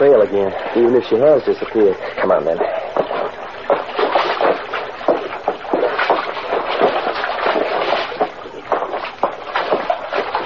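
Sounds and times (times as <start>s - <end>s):
speech: 0.0s - 2.8s
creek water churning: 0.0s - 10.4s
footsteps splashing over rocks through a creek in a ravine: 1.5s - 10.4s.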